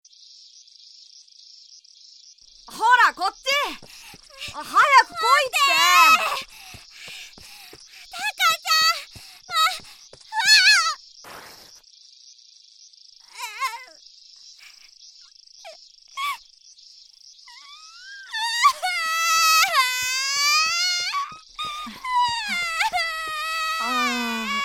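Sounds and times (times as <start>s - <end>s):
speech: 2.7s - 6.4s
young boy crying after getting hurt: 2.7s - 11.0s, 13.3s - 13.9s, 17.6s - 24.6s.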